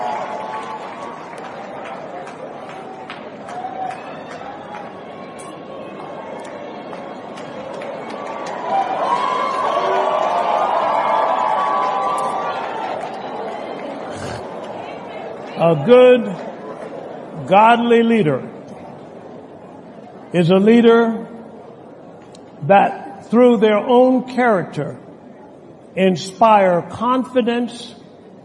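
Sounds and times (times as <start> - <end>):
crowd clapping: 0.0 - 14.8
crowd cheering: 0.0 - 17.1
steady wash of crowd voices: 0.0 - 22.8
speech: 15.6 - 16.4, 17.5 - 18.5, 20.3 - 21.2, 22.7 - 25.0, 26.0 - 28.0.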